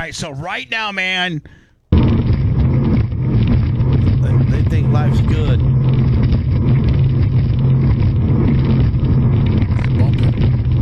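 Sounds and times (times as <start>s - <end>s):
speech: 0.1s - 1.6s
powerful racing boat engine roaring: 2.0s - 10.7s
water noise: 2.1s - 10.7s.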